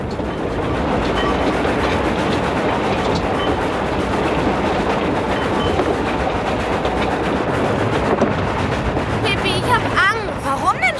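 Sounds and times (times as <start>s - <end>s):
train rumbling on rails: 0.0s - 10.9s.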